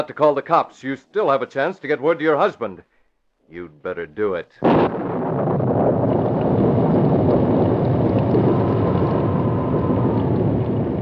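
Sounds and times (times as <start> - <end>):
speech: 0.0 - 2.9, 3.5 - 5.6
deep low thunder rumble: 4.6 - 11.0
heavy rain pouring in a thunderstorm: 4.7 - 11.0.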